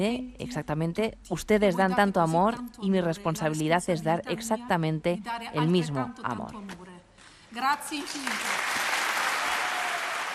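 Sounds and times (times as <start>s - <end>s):
speech: 0.0s - 6.8s, 7.6s - 8.6s
large audience applause: 8.0s - 10.3s.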